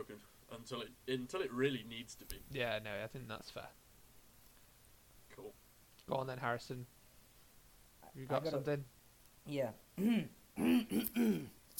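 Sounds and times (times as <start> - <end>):
speech: 0.0 - 3.8, 5.4 - 7.0, 8.1 - 11.6
person clearing throat: 10.0 - 11.6.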